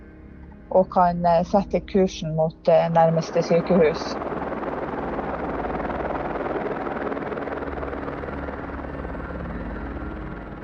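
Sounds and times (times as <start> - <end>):
speech: 0.7 - 4.2
helicopter rotor and engine roaring: 2.6 - 10.6.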